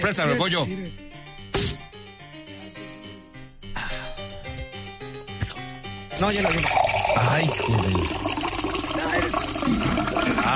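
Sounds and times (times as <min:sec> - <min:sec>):
speech: 0:00.0 - 0:01.1, 0:06.2 - 0:10.5
music: 0:00.0 - 0:10.5
drink from a freshly opened bottle pouring into a glass: 0:06.3 - 0:10.5.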